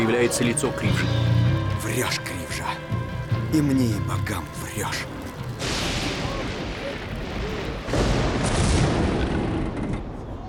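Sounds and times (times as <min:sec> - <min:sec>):
speech: 0:00.1 - 0:05.7
lightning strike crash splitting an idol in an animated film: 0:05.5 - 0:10.2.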